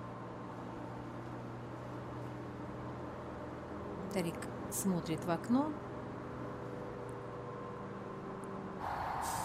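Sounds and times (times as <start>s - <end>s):
bus engine rumble: 0.0s - 9.4s
speech: 4.1s - 5.9s
bus air brakes hissing on a city street: 8.8s - 9.4s.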